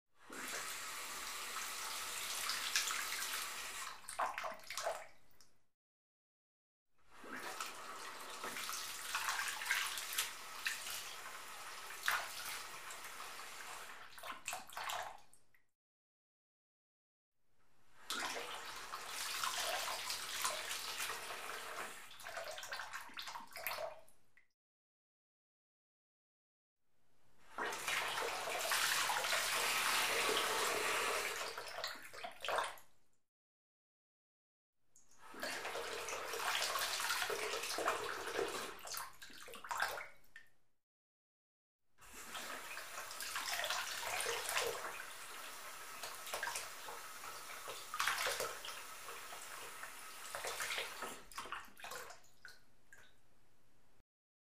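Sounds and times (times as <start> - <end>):
water flowing into a porcelain sink: 0.3 - 5.0, 7.1 - 15.2, 18.0 - 24.0, 27.5 - 32.8, 35.2 - 40.0, 42.0 - 53.1.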